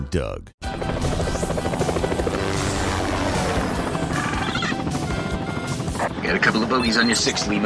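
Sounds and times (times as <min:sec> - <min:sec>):
speech: 0:00.1 - 0:01.2, 0:06.3 - 0:07.6
helicopter rotor thumping: 0:00.7 - 0:06.7.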